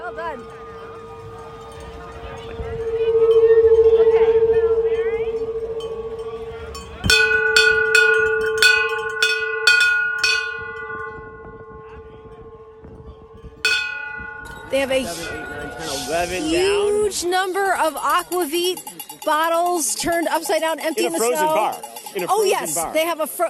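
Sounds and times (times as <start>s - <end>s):
steady droning tone: 0.0s - 18.3s
finishing hand bell rung back and forth: 0.0s - 22.8s
speech: 17.2s - 23.4s.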